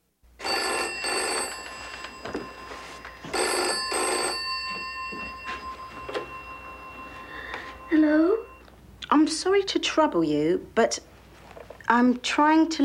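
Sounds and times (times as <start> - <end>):
telephone ringing with a metallic bell trill: 0.4 - 8.7
speech: 9.3 - 11.1, 11.9 - 12.8.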